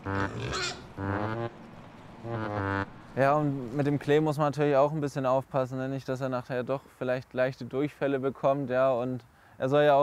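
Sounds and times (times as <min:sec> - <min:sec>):
pig grunting while grazing: 0:00.0 - 0:01.0
faint noise: 0:00.0 - 0:10.0
speech: 0:03.2 - 0:10.0.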